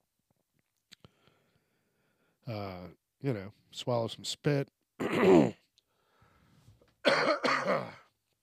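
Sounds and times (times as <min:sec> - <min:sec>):
speech: 0:02.5 - 0:05.6
person coughing over the shoulder during a microphone test: 0:05.0 - 0:05.6, 0:07.0 - 0:08.1.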